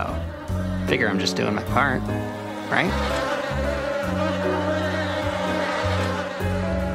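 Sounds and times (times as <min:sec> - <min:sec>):
dense buzzing of many bees: 0:00.0 - 0:06.9
speech: 0:00.9 - 0:04.7.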